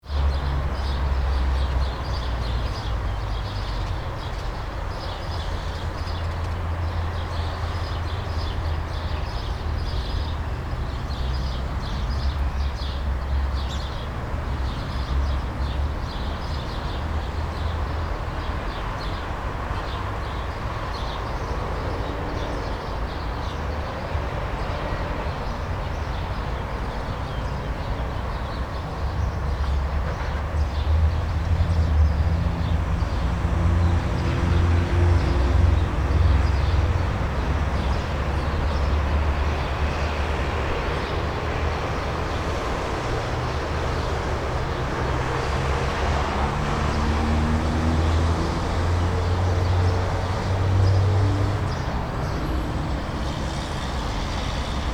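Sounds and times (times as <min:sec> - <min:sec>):
sparrows chirping by a road: 0:00.2 - 0:54.9
heavy trucks passing on a road: 0:29.8 - 0:54.9.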